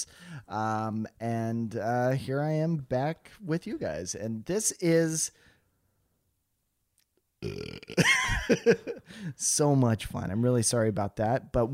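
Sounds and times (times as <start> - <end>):
speech: 0.0 - 5.5, 7.4 - 11.7
loud drawn-out burp: 7.4 - 8.6.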